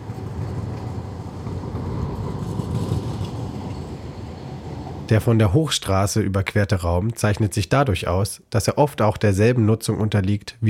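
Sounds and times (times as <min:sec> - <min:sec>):
trams arriving from several directions rolling along rails: 0:00.0 - 0:05.9
speech: 0:05.1 - 0:10.6.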